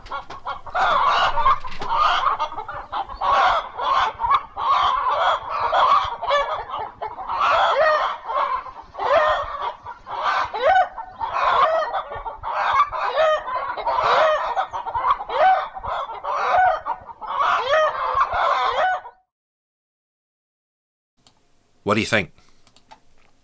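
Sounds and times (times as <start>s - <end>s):
flock of chickens clucking: 0.0s - 3.6s, 5.7s - 18.8s
chickens squawking and cackling agitatedly: 0.0s - 19.2s
speech: 21.9s - 22.4s.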